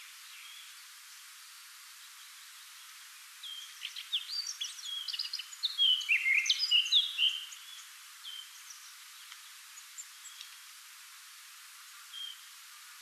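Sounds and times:
Eurasian Blackcap Sylvia atricapilla singing: 3.5s - 7.7s.

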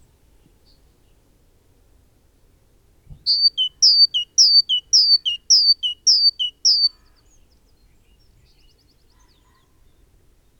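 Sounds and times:
great tit song: 3.3s - 7.0s.

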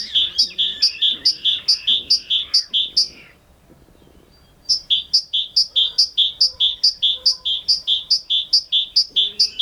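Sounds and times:
Great tit repeating a ringing two-syllable phrase: 0.0s - 3.3s, 4.7s - 9.6s.

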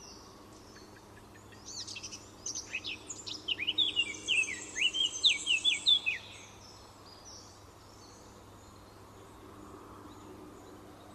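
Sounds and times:
Eurasian blackcap Sylvia atricapilla singing: 1.6s - 6.4s.

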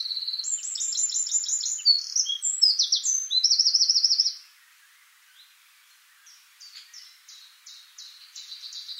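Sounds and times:
Eurasian wren Troglodytes troglodytes song: 0.0s - 8.9s.

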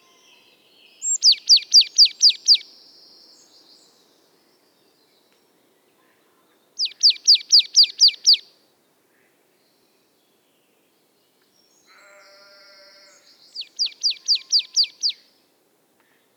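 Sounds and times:
Marsh Tit Poecile palustris song with sharp downslurred notes: 0.0s - 5.4s, 6.8s - 8.5s, 11.4s - 15.2s.

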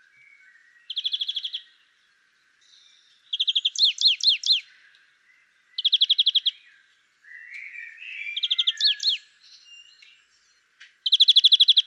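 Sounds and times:
European greenfinch Chloris chloris trilling: 0.9s - 1.7s, 2.8s - 4.7s, 5.8s - 6.6s, 7.5s - 9.2s, 11.0s - 11.8s.

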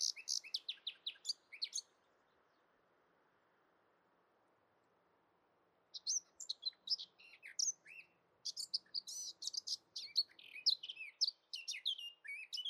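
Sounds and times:
Eurasian blackcap song: 0.0s - 2.7s, 5.9s - 12.6s
faint background hiss: 0.0s - 12.6s.

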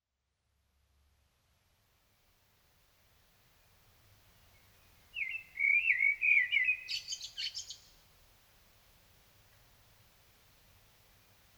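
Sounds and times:
common blackbird Turdus merula warbling and twittering: 5.2s - 8.0s.

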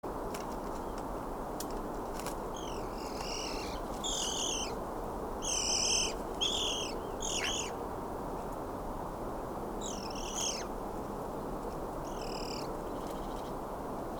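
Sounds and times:
low rumbling background noise: 0.1s - 14.1s
Eurasian magpie Pica pica chattering: 2.6s - 4.8s, 5.4s - 7.7s.

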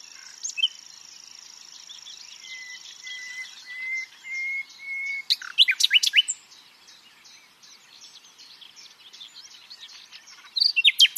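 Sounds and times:
common nightingale Luscinia megarhynchos singing: 0.0s - 11.1s.

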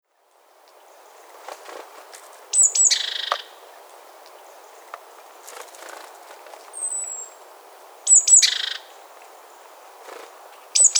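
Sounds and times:
great tit Parus major calls with high thin notes and buzzy bursts: 2.4s - 6.1s, 6.7s - 10.9s.

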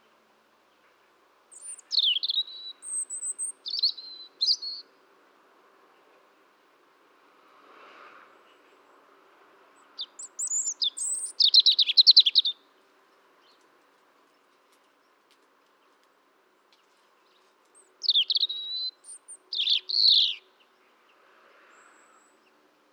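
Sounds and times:
European robin Erithacus rubecula singing: 1.5s - 4.9s, 10.0s - 13.7s, 16.8s - 21.1s.

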